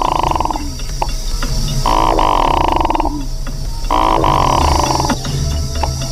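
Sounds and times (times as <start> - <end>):
male Hooded merganser giving buzzy croaking courtship growls: 0.0 - 6.1.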